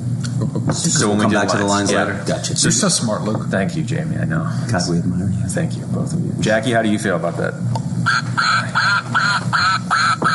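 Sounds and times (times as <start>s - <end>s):
speech: 0.4s - 9.2s
duck quacking: 8.1s - 10.3s.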